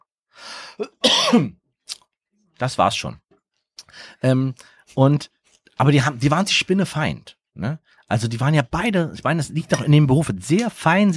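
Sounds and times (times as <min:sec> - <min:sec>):
person coughing: 0:00.8 - 0:01.6, 0:09.6 - 0:10.0
speech: 0:00.8 - 0:01.6, 0:02.6 - 0:03.2, 0:04.0 - 0:11.1.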